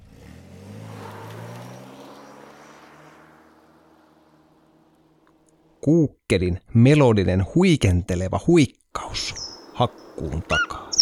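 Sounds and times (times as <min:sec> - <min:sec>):
distant car engine droning as it passes: 0:00.0 - 0:05.9, 0:09.0 - 0:11.0
speech: 0:05.8 - 0:10.8.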